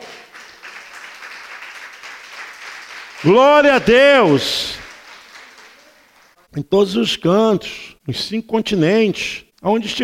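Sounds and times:
church audience applauding: 0.0 - 6.4
speech: 3.2 - 4.8, 6.6 - 10.0.

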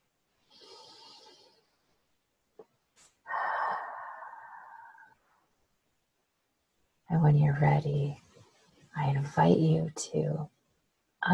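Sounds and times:
soft airy breath during a guided breathing exercise: 0.4 - 1.8, 3.3 - 5.2
speech: 7.1 - 8.2, 9.0 - 10.5.

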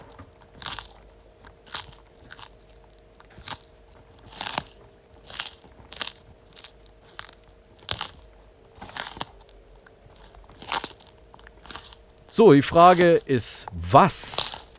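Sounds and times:
mascot tortoise biting and chewing food: 0.6 - 12.0
speech: 12.4 - 14.4.

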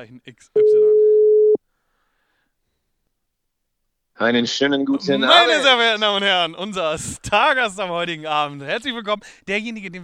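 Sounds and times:
speech: 0.0 - 1.1, 4.2 - 10.0
telephone call tone while dialing a guest: 0.6 - 1.6.

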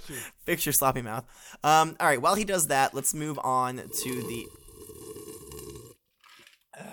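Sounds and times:
speech: 0.1 - 4.6
wet slurping of a drink against the microphone: 3.7 - 6.6.

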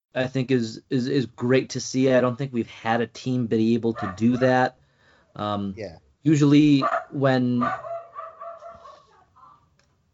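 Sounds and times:
speech: 0.2 - 4.8, 5.4 - 7.9
dog barking: 4.0 - 4.6, 6.8 - 9.6.

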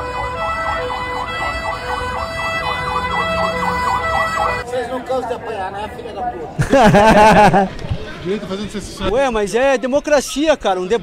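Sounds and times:
ambulance siren wailing: 0.0 - 4.7
steady rumble of road traffic: 0.0 - 11.0
speech: 5.0 - 11.0
laughter: 6.5 - 9.1.

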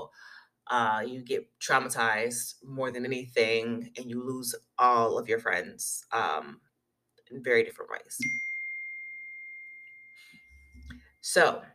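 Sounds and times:
speech: 0.7 - 6.7, 7.3 - 8.5, 11.2 - 11.7
electronic ding from a phone notification: 8.2 - 10.9.

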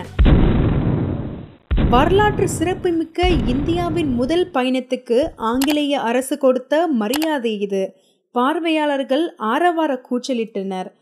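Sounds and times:
cannons firing a salute: 0.0 - 4.5
speech: 1.9 - 11.0.

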